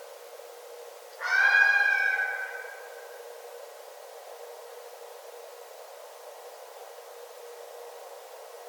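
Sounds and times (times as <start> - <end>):
red fox giving a long harmonic whining cry: 1.2 - 2.8.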